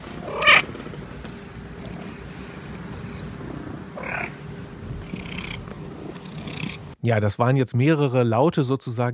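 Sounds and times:
cat purring: 0.0 - 7.0
cat vocal chirps: 0.3 - 0.6
speech: 7.0 - 9.1.

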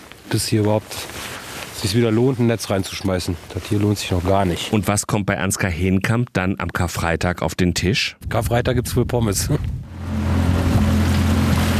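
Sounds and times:
water and air noise on a lake: 0.0 - 4.8, 9.2 - 11.7
speech: 0.3 - 9.8
fisherman's motorboat engine heading back to the shore of the Laacher See: 9.8 - 11.7.

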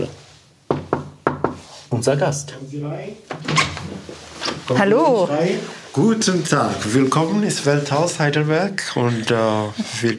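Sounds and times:
sharp knocks on an office door in Heidelberg Germany: 0.7 - 1.6
speech: 1.9 - 10.1.

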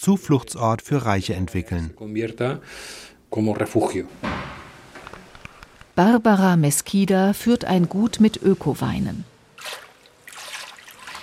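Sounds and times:
speech: 0.0 - 4.5, 6.0 - 9.8
water pouring into huge metal tanks at an organic wine estate in the Balearic Islands: 7.4 - 11.2.

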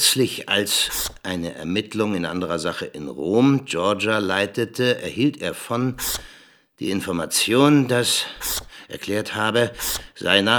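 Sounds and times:
speech: 0.1 - 10.5
thick felt-tip marker swiping to strike through text: 0.8 - 1.2, 6.0 - 6.3, 8.4 - 8.8, 9.7 - 10.1.

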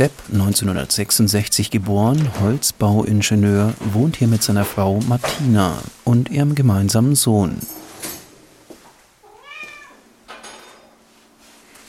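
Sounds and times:
speech: 0.0 - 7.8
household noises: 0.0 - 11.8
cat meowing: 9.2 - 10.1.

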